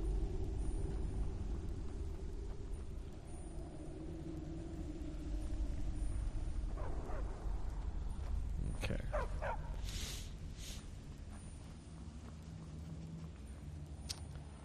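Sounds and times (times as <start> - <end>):
steady low rumble: 0.0 - 14.6
dog barking: 9.1 - 9.8.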